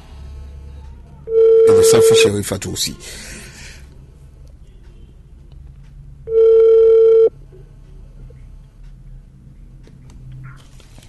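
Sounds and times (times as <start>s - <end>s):
ringback tone on an outgoing telephone call: 1.3s - 2.3s, 6.3s - 7.3s
speech: 1.8s - 3.5s.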